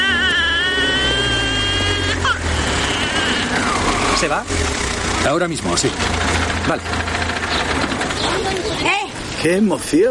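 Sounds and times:
brief squeak as a car comes to a stop: 0:00.0 - 0:04.6
car engine rumbling as the vehicle pulls up: 0:00.0 - 0:09.9
speech: 0:04.2 - 0:07.1, 0:09.4 - 0:10.0.

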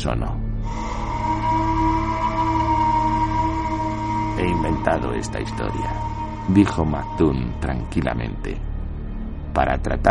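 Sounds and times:
speech: 0:00.0 - 0:00.9, 0:04.4 - 0:08.7, 0:09.6 - 0:10.0
lighthouse foghorn blast: 0:00.6 - 0:08.2.

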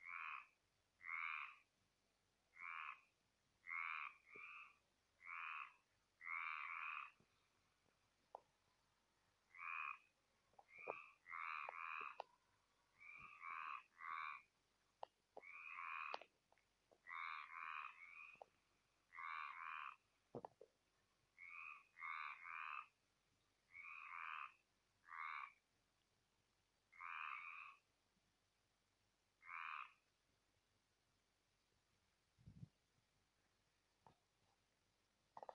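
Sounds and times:
toads and frogs croaking at night near a stream: 0:00.0 - 0:01.7, 0:02.5 - 0:07.4, 0:09.4 - 0:14.6, 0:15.4 - 0:16.3, 0:16.9 - 0:20.5, 0:21.3 - 0:25.7, 0:26.9 - 0:27.9, 0:29.4 - 0:30.1
faint clicks: 0:10.5 - 0:12.4, 0:15.0 - 0:17.1.

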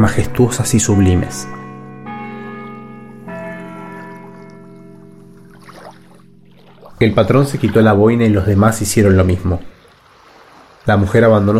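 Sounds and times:
speech: 0:00.0 - 0:01.6, 0:07.0 - 0:09.8, 0:10.8 - 0:11.5
church bell tolling over the sea at dusk: 0:00.0 - 0:09.7
soft watery splash: 0:05.3 - 0:11.5.

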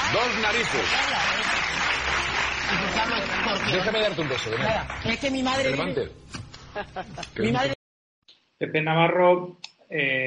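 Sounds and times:
audience applause: 0:00.0 - 0:05.8
speech: 0:00.1 - 0:02.0, 0:02.7 - 0:07.8, 0:08.6 - 0:10.2
laughter: 0:06.7 - 0:07.7.

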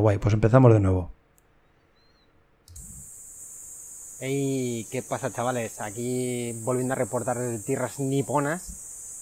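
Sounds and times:
speech: 0:00.0 - 0:01.2, 0:04.2 - 0:08.8
cicadas buzzing in Japan in midsummer: 0:01.9 - 0:09.2.

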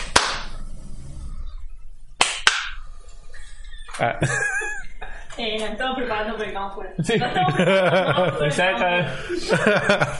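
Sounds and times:
sharp hand claps with short tail in a quiet room: 0:00.0 - 0:00.6, 0:02.2 - 0:02.8
laughter: 0:03.3 - 0:05.4, 0:07.0 - 0:10.1
speech: 0:04.0 - 0:04.6, 0:05.4 - 0:10.1.

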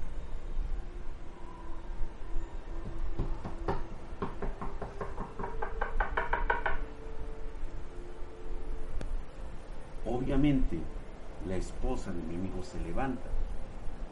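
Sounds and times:
low steady hum: 0:00.0 - 0:14.0
knocking on a door: 0:02.8 - 0:06.9
speech: 0:10.3 - 0:13.4.

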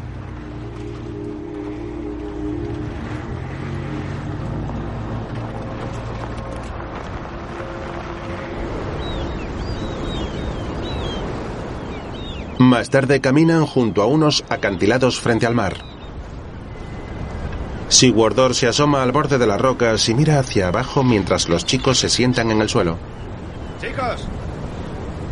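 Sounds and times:
car engine driving through mountain terrain: 0:00.0 - 0:08.1
road rumble: 0:00.0 - 0:25.3
wind noise: 0:00.0 - 0:25.3
speech: 0:12.7 - 0:16.0, 0:17.9 - 0:23.2, 0:23.8 - 0:24.4.

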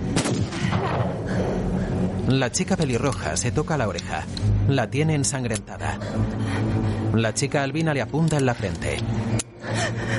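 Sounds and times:
pistol gunshot: 0:00.1 - 0:01.1
speech: 0:02.3 - 0:10.1.

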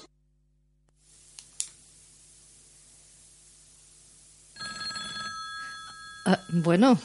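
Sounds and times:
faint hiss: 0:00.9 - 0:04.6
clicks: 0:01.3 - 0:01.8
telephone ringing with an incoming call: 0:04.6 - 0:07.0
speech: 0:06.3 - 0:07.0.

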